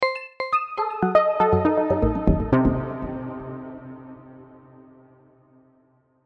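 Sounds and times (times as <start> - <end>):
descending mysterious synth with reverb: 1.3 - 4.6.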